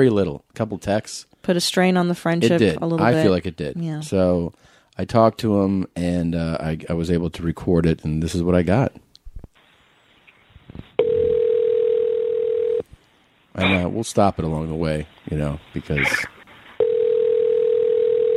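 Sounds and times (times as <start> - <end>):
speech: 0.0 - 9.0, 13.6 - 16.4
telephone ringback tone of an outgoing call: 11.0 - 12.8, 16.8 - 18.3.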